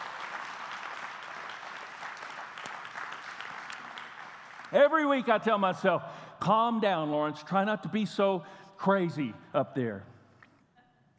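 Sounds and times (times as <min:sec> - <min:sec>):
large audience clapping together: 0:00.0 - 0:05.4
speech: 0:04.7 - 0:10.1.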